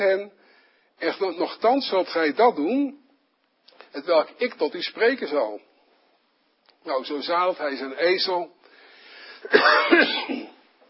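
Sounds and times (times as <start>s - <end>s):
speech: 0.0s - 0.4s, 1.0s - 3.0s, 3.7s - 5.7s, 6.8s - 8.6s, 9.4s - 10.4s
man coughing: 9.4s - 10.7s.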